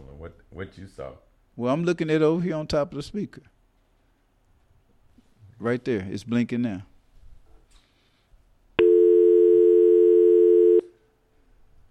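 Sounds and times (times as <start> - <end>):
speech: 0.2 - 3.6, 5.6 - 6.9
phone line ringing through with electronic ring tone: 8.8 - 10.9.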